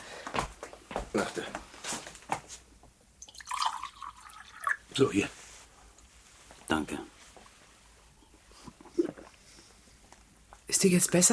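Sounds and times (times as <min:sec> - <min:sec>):
speech: 0:01.2 - 0:01.7, 0:05.0 - 0:05.4, 0:06.7 - 0:07.1, 0:10.8 - 0:11.3
water poured into a glass for medicine drops: 0:03.2 - 0:05.0.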